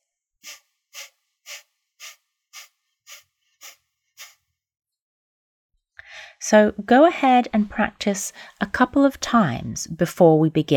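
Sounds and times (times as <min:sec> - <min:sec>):
forceful breaths exhaled sharply through the nose: 0:00.4 - 0:04.4
speech: 0:06.5 - 0:10.7.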